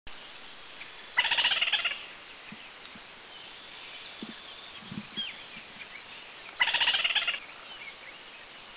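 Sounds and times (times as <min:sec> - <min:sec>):
Ward's Trogon alarm call in Dirang India: 0:01.2 - 0:02.1, 0:06.6 - 0:07.5.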